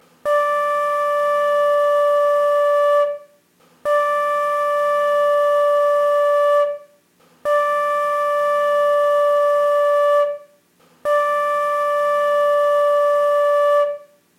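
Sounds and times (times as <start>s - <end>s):
flute note in D: 0.2s - 14.2s.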